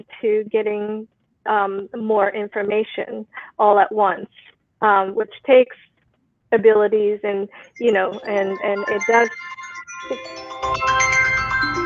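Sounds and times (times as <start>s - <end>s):
speech: 0.0s - 5.9s, 6.5s - 11.0s
phone ringtone with bright tinkling melody and rhythmic beat: 7.6s - 11.8s.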